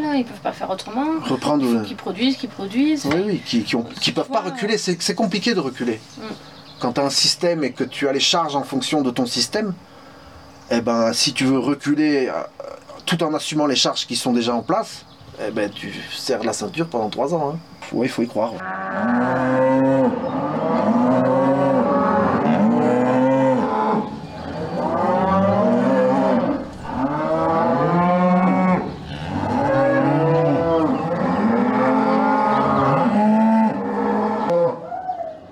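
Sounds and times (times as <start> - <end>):
speech: 0.1 - 9.9, 10.7 - 19.5
herd of Limousin cattle mooing: 18.6 - 34.9.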